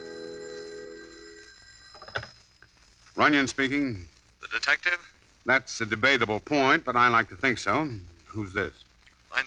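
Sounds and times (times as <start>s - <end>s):
telephone ringing with a steady buzzing tone: 0.0s - 2.8s
speech: 3.2s - 9.4s.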